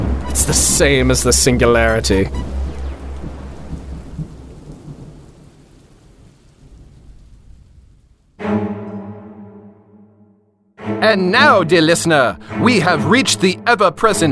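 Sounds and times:
loud sustained ringing tone: 0:00.0 - 0:02.8
deep rumble of thunder: 0:00.0 - 0:08.4
heavy rain: 0:00.0 - 0:08.5
speech: 0:00.4 - 0:02.5, 0:11.0 - 0:14.3.

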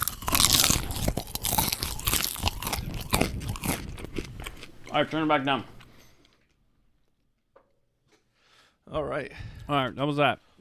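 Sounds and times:
dense crunches and grinding chews of crisp popcorn: 0:00.0 - 0:06.4
chewing four buttery salty popcorn kernels at once: 0:00.0 - 0:07.2
speech: 0:05.0 - 0:05.8, 0:09.1 - 0:10.5.

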